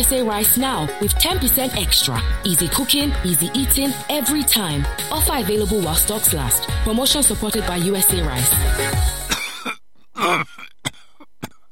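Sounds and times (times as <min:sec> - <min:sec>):
speech: 0:00.0 - 0:09.2
person coughing repeatedly: 0:09.2 - 0:11.7.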